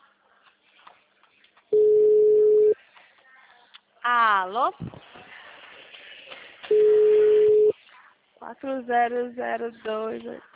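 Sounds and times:
telephone ringback tone of an outgoing call: 1.8 - 2.8, 6.7 - 7.7
speech: 4.4 - 5.1, 8.5 - 10.5.

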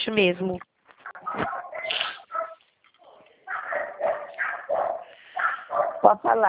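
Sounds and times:
speech: 0.1 - 0.7, 1.4 - 1.6, 6.0 - 6.4
dogs barking and yapping during a phone call: 1.0 - 6.2.

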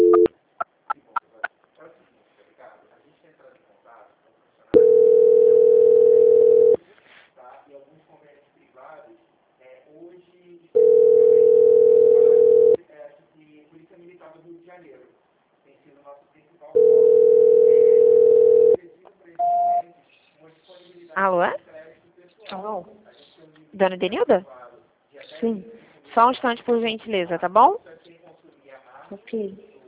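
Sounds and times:
telephone tones while a call is being transferred: 0.0 - 0.3, 4.8 - 6.8, 10.8 - 12.8, 16.8 - 18.8
speech: 23.8 - 24.6, 25.4 - 27.9, 29.1 - 29.7.

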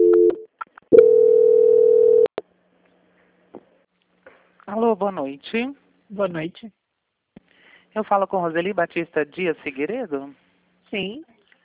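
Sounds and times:
telephone call-transfer tone: 0.0 - 2.3
speech: 4.8 - 6.8, 7.9 - 11.3.

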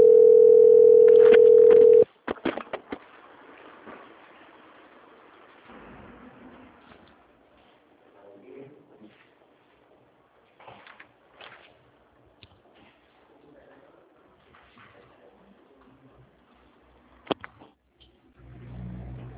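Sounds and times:
telephone call transfer tone: 0.0 - 2.0.

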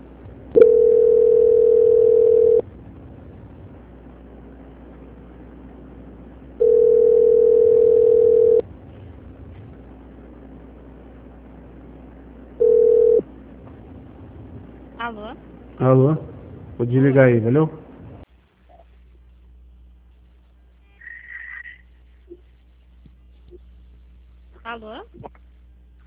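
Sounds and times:
telephone call-transfer tone beeps: 0.6 - 2.6, 6.6 - 8.6, 12.6 - 13.2
speech: 15.9 - 16.2, 16.8 - 17.8.

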